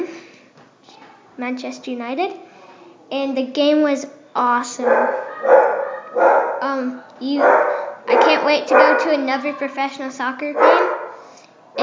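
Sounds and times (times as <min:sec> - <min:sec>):
speech: 0:01.4 - 0:02.5, 0:03.1 - 0:10.9
dog barking: 0:04.8 - 0:06.7, 0:07.4 - 0:09.5, 0:10.6 - 0:11.2.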